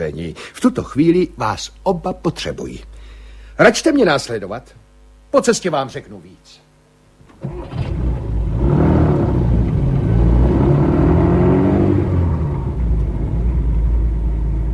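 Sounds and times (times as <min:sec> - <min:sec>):
speech: 0:00.0 - 0:06.6
car engine starting and accelerating away: 0:07.4 - 0:14.7.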